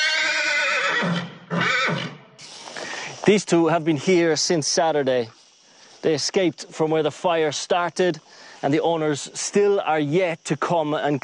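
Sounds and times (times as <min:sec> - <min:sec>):
horse neighing: 0:00.0 - 0:02.2
speech: 0:03.2 - 0:05.4, 0:06.0 - 0:11.2.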